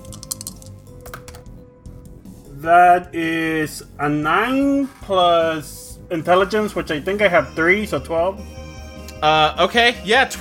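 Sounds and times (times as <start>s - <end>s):
dice rolled across a hard tabletop: 0.0s - 1.5s
speech: 2.6s - 8.6s, 9.2s - 10.3s.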